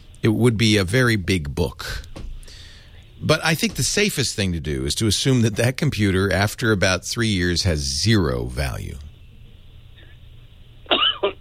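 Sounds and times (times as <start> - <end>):
low hum: 0.0 - 11.3
speech: 0.2 - 2.1, 3.2 - 9.1
man coughing: 10.9 - 11.3.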